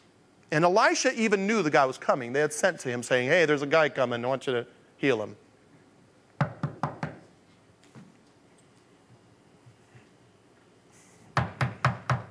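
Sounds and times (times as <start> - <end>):
speech: 0.5 - 5.4
firm knocks on a door: 11.4 - 12.2.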